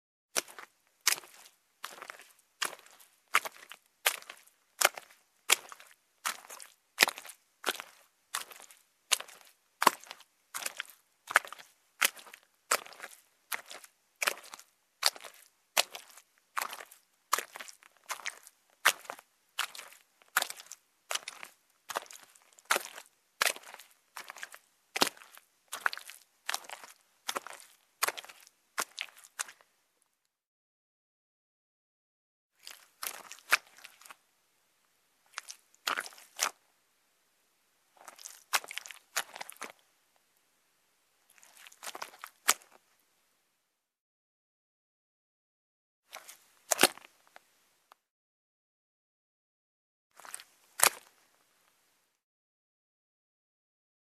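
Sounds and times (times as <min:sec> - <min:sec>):
footsteps in mud: 0:00.4 - 0:29.7, 0:32.6 - 0:34.2, 0:35.3 - 0:36.6, 0:38.0 - 0:39.8, 0:41.3 - 0:42.8, 0:46.1 - 0:47.1, 0:50.2 - 0:51.2.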